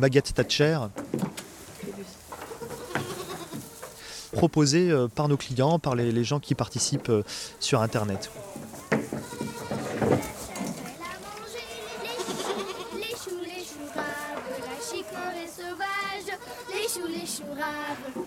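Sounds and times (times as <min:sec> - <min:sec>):
speech: 0:00.0 - 0:01.3, 0:04.4 - 0:08.5
several goats bleating: 0:02.4 - 0:04.0, 0:06.6 - 0:18.2.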